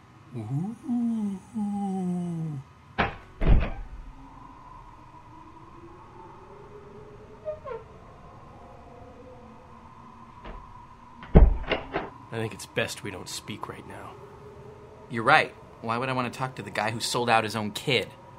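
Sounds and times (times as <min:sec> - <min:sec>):
speech: 0:00.3 - 0:01.6, 0:12.4 - 0:14.3, 0:15.1 - 0:18.2
heavy thunks of a swinging door: 0:03.0 - 0:03.9, 0:11.2 - 0:12.1
door creaking open: 0:03.0 - 0:04.0, 0:07.4 - 0:08.0, 0:10.4 - 0:12.1.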